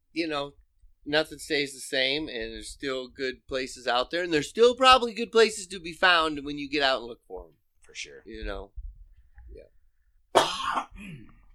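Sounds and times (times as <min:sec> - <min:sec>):
speech: 0:00.2 - 0:08.8
harsh cough: 0:10.4 - 0:11.4
raspy throat-clearing rumble: 0:10.4 - 0:11.5.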